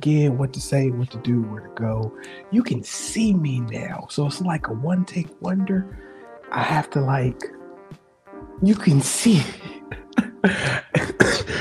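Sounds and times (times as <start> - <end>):
speech: 0.0 - 7.6, 8.6 - 11.5
person coughing harshly: 9.8 - 11.5.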